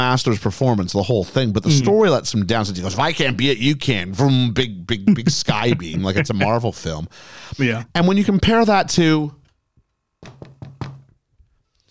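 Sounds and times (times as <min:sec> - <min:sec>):
speech: 0:00.0 - 0:09.4
laughter: 0:01.7 - 0:02.1, 0:04.9 - 0:06.9
quick solid knocks on a hard surface: 0:10.2 - 0:11.2.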